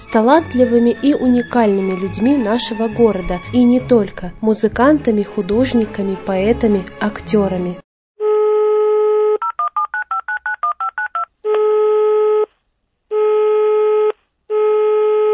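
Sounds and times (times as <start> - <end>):
speech: 0.0 - 7.8
steady telephone dial tone: 8.2 - 12.5, 13.2 - 15.3
long telephone ringing tones: 9.2 - 12.5
touch-tone telephone keypad beeps of shifting pitch: 9.5 - 11.3.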